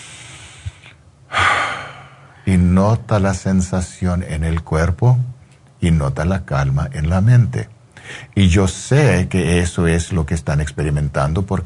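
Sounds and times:
deep inhale during a guided breathing exercise: 0.0 - 2.5, 8.0 - 8.4
speech: 2.5 - 11.6.

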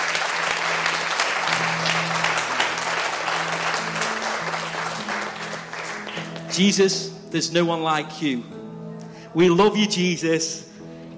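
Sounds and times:
large audience clapping: 0.0 - 6.7
speech: 6.6 - 8.6, 9.3 - 10.7.

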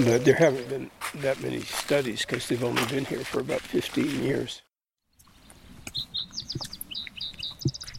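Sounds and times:
speech: 0.0 - 4.6, 6.0 - 6.7
two birds calling in a duet: 5.1 - 7.9.

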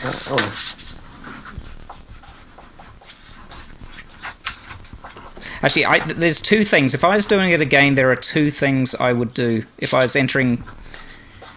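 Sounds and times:
speech: 0.0 - 0.8, 5.6 - 10.9
pen scratching across paper in quick irregular strokes: 0.0 - 8.0, 9.9 - 11.5
soft rustling: 0.0 - 11.5.

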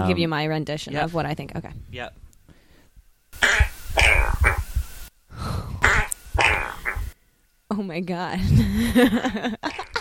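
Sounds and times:
speech: 0.0 - 2.3, 7.7 - 9.9
sputtering fart sounds: 3.4 - 4.8, 5.8 - 7.2, 9.6 - 9.9
laughter: 8.7 - 9.9.

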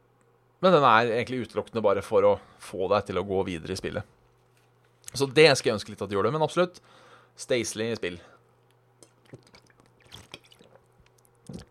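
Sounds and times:
faint steady hum: 0.0 - 11.6
speech: 0.6 - 4.2, 5.1 - 8.4
person sipping water at the mic: 9.0 - 11.6
swallowing: 9.0 - 11.6
wet mouth clicks: 9.0 - 11.6.

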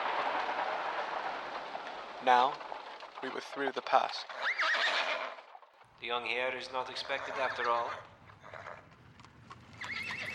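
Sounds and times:
coach horses clip-clopping: 0.0 - 10.3
speech: 2.2 - 5.0, 6.0 - 8.1
coach horse neighing: 4.3 - 5.5, 6.8 - 8.9, 9.8 - 10.3.

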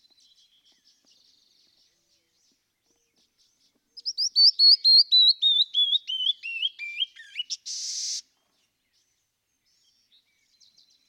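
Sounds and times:
canyon wren whistled song: 4.0 - 8.2.

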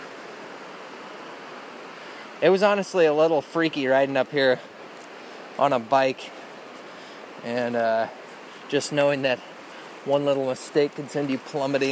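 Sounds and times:
fast-moving river water rushing below a trail: 0.0 - 11.8
speech: 2.4 - 4.7, 5.6 - 6.4, 7.4 - 11.8.

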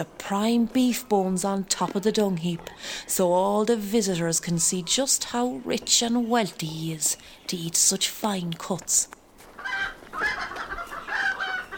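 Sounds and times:
speech: 0.0 - 9.2
agitated chickens clucking and squawking, disturbed by kittens: 9.4 - 11.7.

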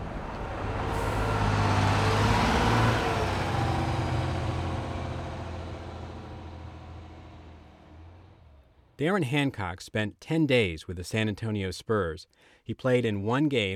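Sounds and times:
basketball team bus engine drone on Interstate 90: 0.0 - 9.0
bus tyre road roar on Interstate 90: 0.0 - 9.0
speech: 9.0 - 13.7.

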